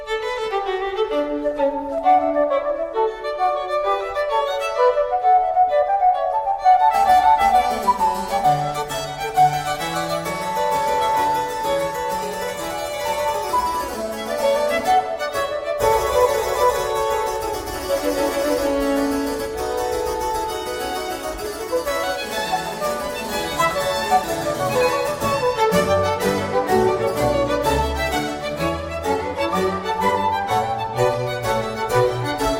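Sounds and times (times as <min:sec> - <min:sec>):
violins in a baroque concerto allegro: 0:00.0 - 0:32.5
transverse flute in a baroque concerto allegro: 0:01.2 - 0:32.5
harpsichord in a baroque concerto allegro: 0:07.0 - 0:32.5.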